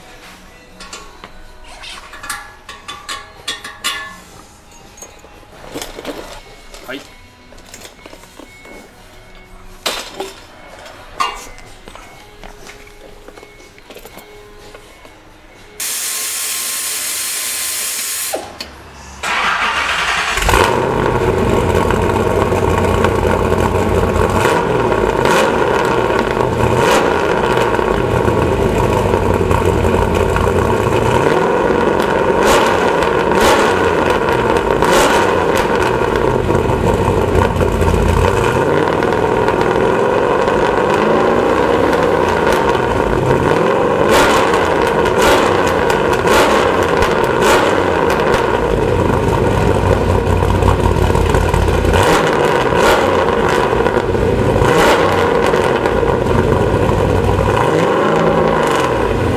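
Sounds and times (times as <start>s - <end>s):
IROC car exhaust through Borla muffler: 19.7s - 59.3s.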